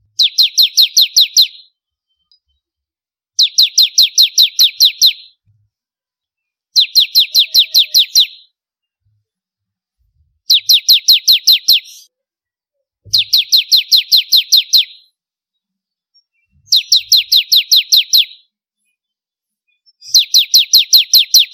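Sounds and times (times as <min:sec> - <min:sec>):
bar-winged prinia singing rapid high chirps: 0:00.1 - 0:02.6, 0:03.4 - 0:05.4, 0:06.7 - 0:08.6, 0:10.5 - 0:12.2, 0:13.1 - 0:15.2, 0:15.9 - 0:18.6, 0:19.7 - 0:21.5.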